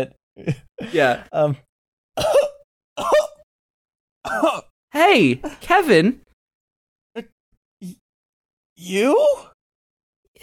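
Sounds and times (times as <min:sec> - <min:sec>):
speech: 0:00.0 - 0:02.4, 0:04.2 - 0:06.2, 0:07.2 - 0:08.0, 0:08.8 - 0:09.5
person coughing throatily: 0:02.2 - 0:03.4, 0:04.3 - 0:04.7.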